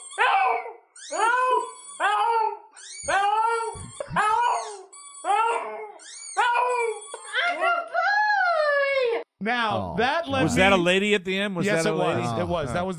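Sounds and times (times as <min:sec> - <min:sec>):
pug yowling: 0:00.0 - 0:09.3
speech: 0:09.4 - 0:12.9.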